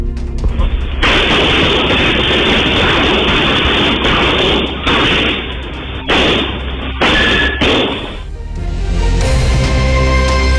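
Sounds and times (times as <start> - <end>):
low rumbling background: 0.0 - 10.5
gunfire bursts in a shootout between security guards and criminals: 0.8 - 8.2.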